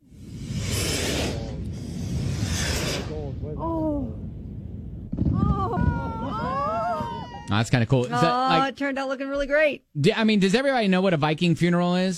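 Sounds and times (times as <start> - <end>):
fireworks crackling and hissing over the sea: 0.0 - 6.9
excited voices calling out: 5.4 - 8.8
speech: 7.5 - 12.1.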